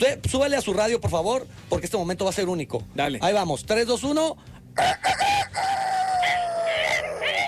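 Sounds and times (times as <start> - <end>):
speech: 0.0 - 5.7
person imitating rooster crow as a wake-up call: 4.8 - 7.4.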